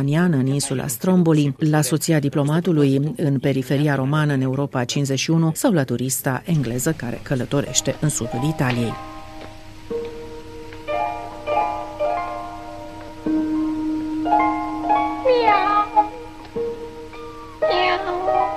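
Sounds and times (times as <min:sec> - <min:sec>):
speech: 0:00.0 - 0:09.2
steady low humming drone: 0:06.5 - 0:18.5
cat meowing: 0:17.5 - 0:18.5.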